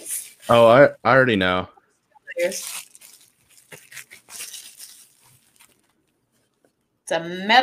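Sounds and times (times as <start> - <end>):
bubble wrap being unwrapped and crinkled: 0.0 - 0.8, 2.3 - 6.8
speech: 0.5 - 1.8, 2.4 - 2.8, 7.1 - 7.6.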